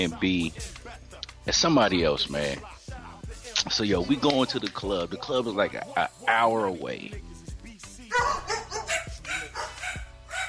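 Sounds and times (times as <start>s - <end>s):
speech: 0.0s - 0.8s, 1.4s - 2.7s, 3.6s - 7.3s
dog barking at the door: 8.1s - 10.4s.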